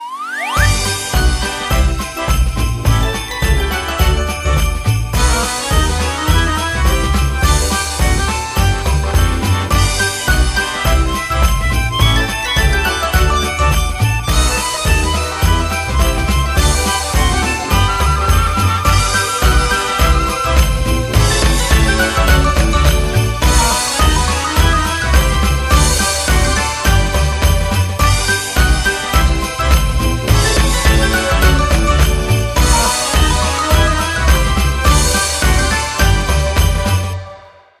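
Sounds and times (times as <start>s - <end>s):
big win music loop: 0.0s - 37.2s.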